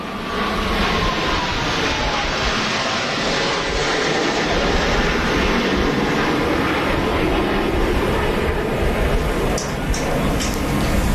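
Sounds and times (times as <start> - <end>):
airplanes flying low overhead: 0.0 - 11.1.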